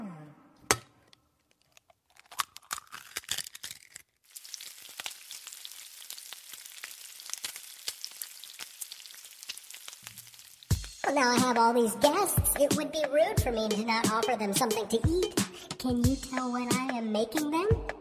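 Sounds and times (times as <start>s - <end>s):
egg cracking open: 0.7s - 10.8s
egg frying in a hot pan: 4.3s - 10.9s
speech: 11.1s - 17.9s.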